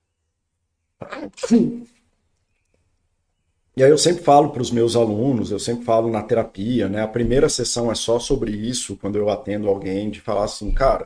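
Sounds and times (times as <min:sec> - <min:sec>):
person sneezing: 0:01.0 - 0:01.8
speech: 0:01.2 - 0:02.0, 0:03.8 - 0:11.0.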